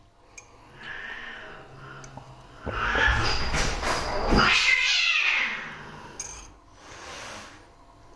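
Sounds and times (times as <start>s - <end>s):
cats meowing and caterwauling: 0.8s - 6.2s.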